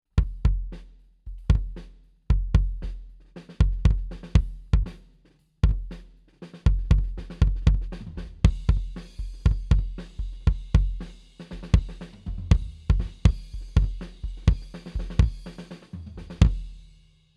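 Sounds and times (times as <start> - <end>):
kick drum head recorded off mid with D112 microphone: 0.2 - 3.0, 3.6 - 5.0, 5.6 - 6.0, 6.7 - 11.1, 11.7 - 15.4.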